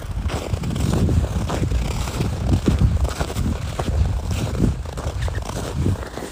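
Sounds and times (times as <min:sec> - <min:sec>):
faint wind rumble: 0:00.0 - 0:06.3
footsteps crunching through snow on a riverbed in Sapporo: 0:00.0 - 0:06.3.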